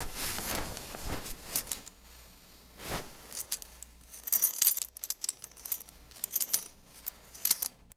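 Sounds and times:
thick belt rustling: 0.0s - 2.0s, 2.9s - 7.8s
belt buckle clinking: 3.4s - 7.8s.

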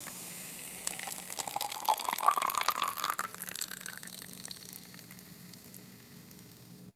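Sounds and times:
fizzy carbonated water pouring into glass: 0.6s - 6.7s.

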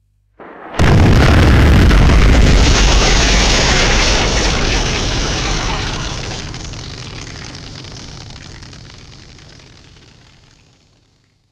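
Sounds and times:
large outdoor explosion with long echo: 0.4s - 9.4s.

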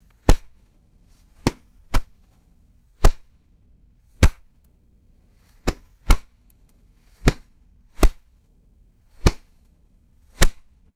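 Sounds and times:
leather baseball glove slapping canvas base: 0.2s - 0.6s, 1.4s - 2.2s, 3.0s - 3.3s, 4.2s - 4.5s, 5.6s - 6.3s, 7.2s - 8.3s, 9.2s - 9.5s, 10.4s - 10.7s.

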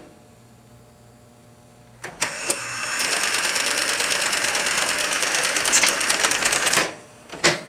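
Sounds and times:
vintage mechanical weighing machine game operating: 2.1s - 7.6s.

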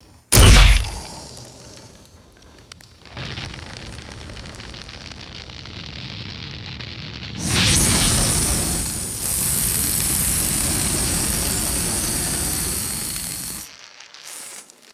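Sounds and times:
airy crackling flame: 0.0s - 14.9s
sharp crack igniting a flame: 0.3s - 1.5s.

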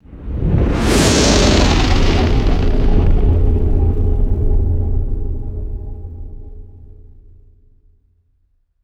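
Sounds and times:
mysterious atmospheric synthetic swell: 0.8s - 6.9s.

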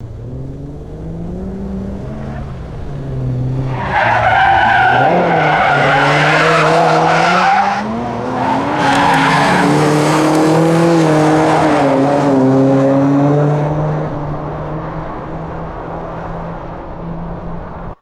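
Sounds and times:
car accelerating while passing by: 0.0s - 17.9s
car tires screeching while passing by: 0.0s - 17.9s.

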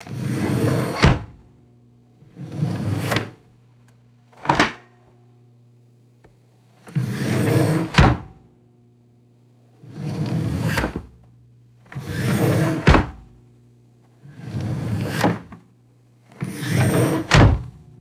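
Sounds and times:
wooden drawer sliding open and closed: 0.1s - 1.4s, 2.4s - 3.4s, 4.4s - 4.8s, 6.9s - 8.3s, 9.9s - 11.2s, 11.9s - 13.3s, 14.4s - 15.6s, 16.4s - 17.8s.

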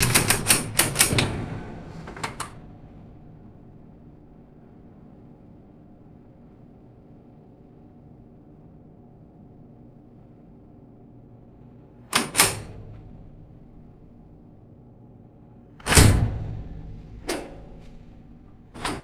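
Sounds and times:
heavy galley oven switches clicking on boats: 0.0s - 4.9s, 12.1s - 14.3s, 15.8s - 19.0s.

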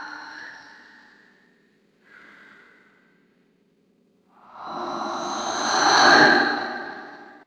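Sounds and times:
whispery ethereal spirit screams whooshing: 4.5s - 7.4s.

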